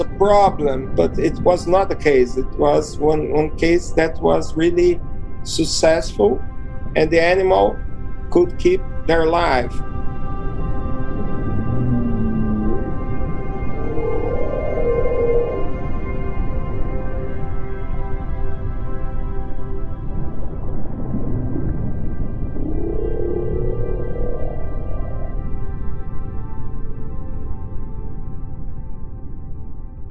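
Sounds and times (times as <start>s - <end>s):
underwater whale calls at Ubatuba: 0.0s - 3.2s, 10.4s - 17.0s, 20.1s - 26.4s
steady hum of engine-like drone: 0.0s - 4.9s, 8.6s - 18.2s, 19.6s - 27.2s
speech: 0.0s - 9.9s.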